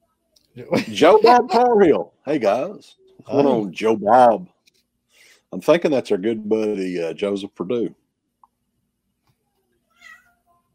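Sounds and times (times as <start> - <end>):
laughter: 0.6 - 4.0
speech: 0.6 - 4.6, 5.5 - 8.0
cat meowing: 9.9 - 10.4.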